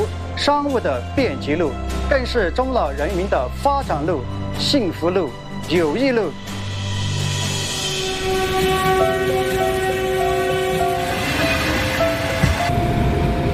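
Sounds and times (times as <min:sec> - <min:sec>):
speech: 0:00.4 - 0:06.6
train rumbling through a railway tunnel: 0:06.3 - 0:13.5
sustained horn-like tones of a train in a railway tunnel: 0:06.9 - 0:13.5.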